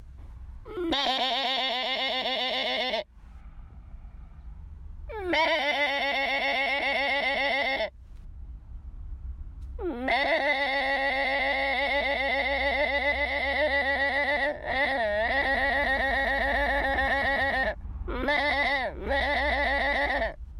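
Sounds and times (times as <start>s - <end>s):
low background hum: 0.0s - 20.5s
goat bleating: 0.7s - 3.1s, 5.1s - 7.9s, 9.8s - 20.4s.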